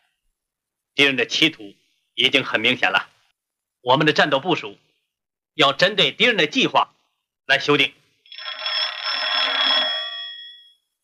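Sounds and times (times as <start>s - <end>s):
speech: 1.0s - 3.1s, 3.8s - 4.9s, 5.6s - 8.0s
old-style telephone bell ringing: 8.3s - 10.9s.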